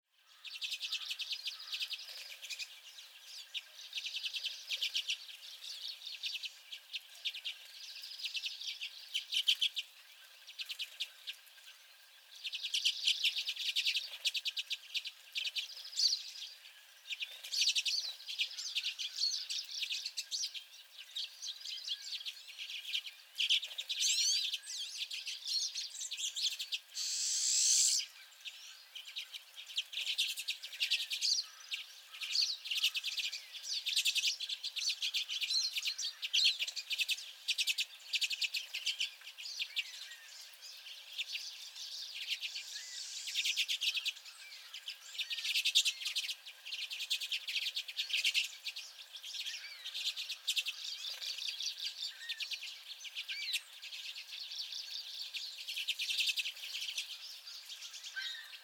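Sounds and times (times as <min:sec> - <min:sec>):
Common Redpolls: 0:00.2 - 0:58.6
Pine Siskin: 0:00.3 - 0:52.7.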